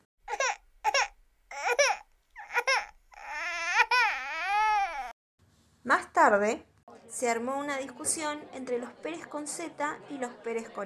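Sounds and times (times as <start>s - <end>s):
newborn baby crying and babbling: 0.3s - 5.2s
speech: 5.8s - 10.8s.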